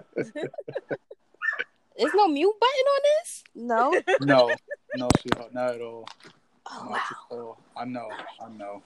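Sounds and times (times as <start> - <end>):
laughter: 0.0 - 1.2, 3.8 - 5.5
speech: 0.2 - 1.2, 2.0 - 8.8
dog barking in another room: 0.7 - 2.2
dog yelping: 1.4 - 2.3.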